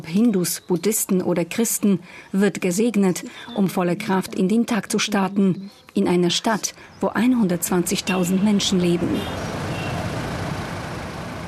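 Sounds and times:
speech: 0:00.0 - 0:09.6
heavy car traffic rumbling in narrow town streets: 0:06.3 - 0:11.4.

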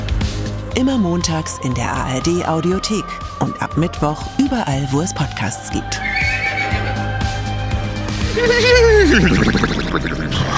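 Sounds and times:
rhythmic low thumps: 0:00.0 - 0:10.5
speech: 0:00.8 - 0:06.4, 0:08.4 - 0:10.5
horse whinnying: 0:06.0 - 0:07.1, 0:08.3 - 0:10.5
laughter: 0:08.3 - 0:10.5.

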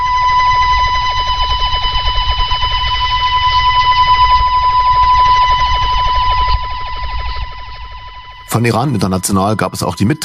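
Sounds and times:
rapidly sweeping warbling radio jammer signal: 0:00.0 - 0:10.2
steady pure sine tone: 0:00.0 - 0:10.2
speech: 0:08.6 - 0:10.2.

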